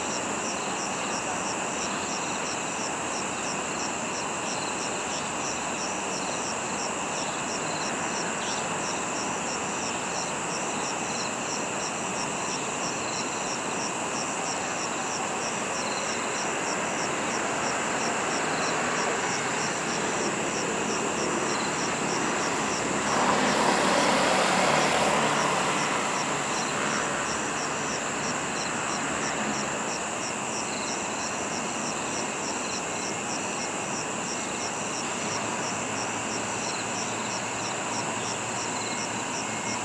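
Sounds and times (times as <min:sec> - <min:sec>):
insects chirring beside a wetland park parking lot: 0:00.0 - 0:39.8
vehicle passing: 0:17.4 - 0:29.8.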